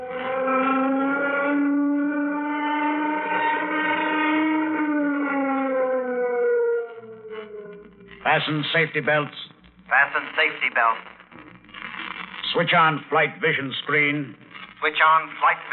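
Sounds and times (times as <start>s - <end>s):
warning siren before a craft's takeoff: 0.0s - 8.3s
speech: 8.4s - 11.1s, 12.5s - 15.7s.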